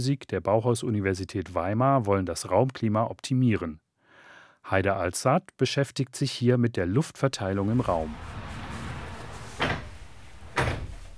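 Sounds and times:
speech: 0.0s - 3.8s, 4.6s - 8.4s
sliding door being opened at a building physics institute: 7.5s - 11.1s.

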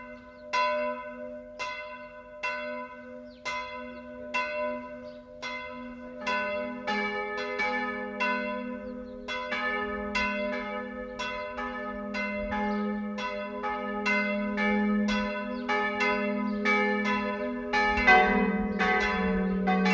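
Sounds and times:
church bells of a Bavarian minster in Fischbachau ringing in a peal: 0.0s - 19.9s.

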